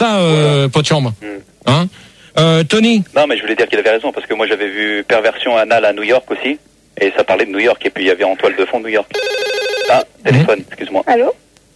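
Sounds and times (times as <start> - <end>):
speech: 0.0 - 11.4
telephone ringing with a bright electronic tone: 9.1 - 10.1.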